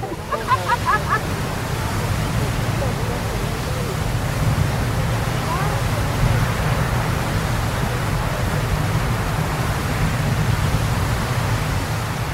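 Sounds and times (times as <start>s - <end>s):
laughter: 0.0s - 3.3s
faint voices: 0.0s - 10.4s
geyser erupting with water jetting upward: 0.0s - 12.3s.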